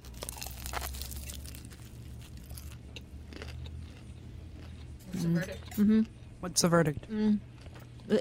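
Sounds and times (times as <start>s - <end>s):
crunchy bite of an egg roll: 0.0s - 4.0s
crackly chewing: 0.0s - 5.1s
low steady hum: 0.0s - 8.1s
speech: 5.2s - 7.5s.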